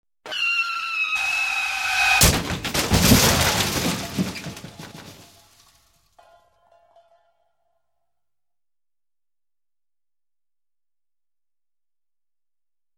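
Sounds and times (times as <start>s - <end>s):
car braking suddenly: 0.3s - 2.6s
car crash: 1.0s - 7.0s.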